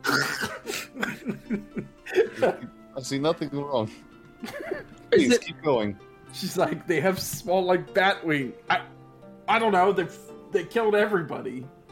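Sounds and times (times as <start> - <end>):
woman coughing harshly, acted out as coughing up blood: 0.0 - 1.3
laughter: 0.7 - 2.7, 4.4 - 5.4
speech: 1.5 - 8.9, 9.5 - 11.8.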